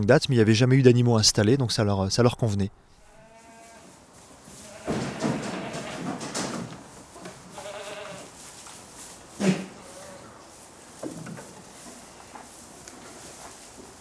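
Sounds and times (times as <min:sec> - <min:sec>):
speech: 0:00.0 - 0:03.0
goats bleating outdoors: 0:03.0 - 0:04.0, 0:04.6 - 0:06.1, 0:07.5 - 0:08.3.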